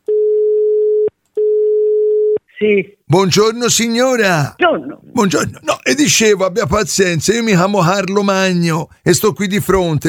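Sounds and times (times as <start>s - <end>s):
telephone call signal tones while dialing out: 0.1s - 2.4s
speech: 2.6s - 10.0s.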